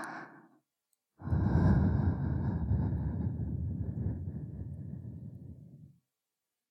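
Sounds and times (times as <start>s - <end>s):
soft breath blown into the ear: 1.3s - 5.9s.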